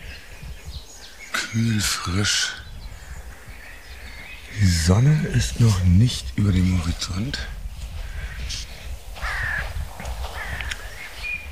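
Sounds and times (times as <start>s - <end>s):
speech: 1.5s - 2.6s, 4.6s - 7.6s
crows cawing in frosty early morning before sunrise: 7.9s - 11.2s.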